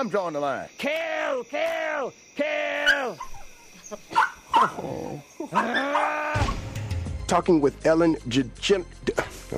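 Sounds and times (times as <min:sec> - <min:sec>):
speech: 0:00.0 - 0:06.6, 0:07.3 - 0:09.5
small dog yapping: 0:04.1 - 0:04.8, 0:05.5 - 0:06.2.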